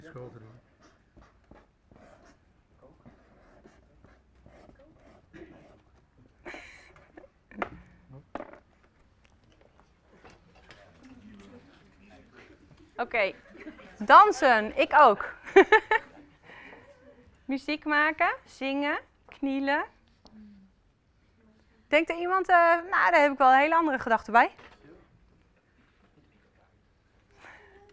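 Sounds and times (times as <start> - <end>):
marker squeaking and scratching across a flip chart: 0.6 - 6.2
laughter: 12.1 - 14.4, 15.4 - 17.4
speech: 13.0 - 13.4, 14.0 - 15.9, 17.5 - 20.0, 21.9 - 24.7.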